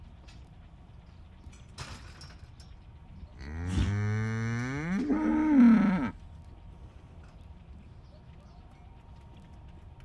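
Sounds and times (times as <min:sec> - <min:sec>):
impatient cow mooing by a roadside pasture: 0:03.4 - 0:06.2.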